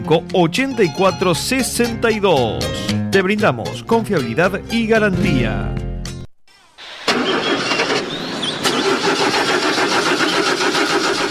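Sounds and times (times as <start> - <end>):
speech: 0.1 - 5.8
generator engine cranking and starting: 6.8 - 11.2.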